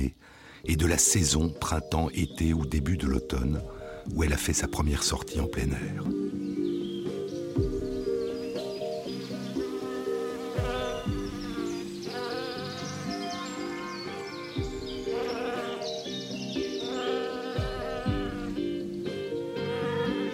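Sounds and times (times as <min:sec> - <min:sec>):
speech: 0:00.0 - 0:06.6
many honeybees buzzing: 0:06.1 - 0:20.3.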